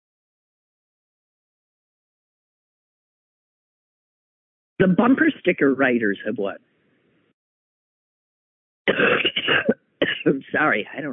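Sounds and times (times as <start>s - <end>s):
speech: 4.8s - 6.8s, 8.9s - 11.1s
person coughing: 8.9s - 10.3s.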